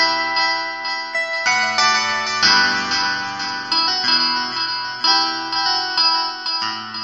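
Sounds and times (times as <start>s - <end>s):
music loops in E minor: 0.1s - 6.9s.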